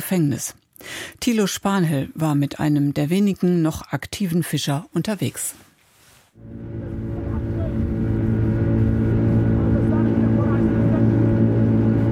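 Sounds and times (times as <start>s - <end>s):
speech: 0.0s - 5.6s, 6.4s - 7.0s
motor of a wooden boat speeding over water: 6.4s - 12.0s.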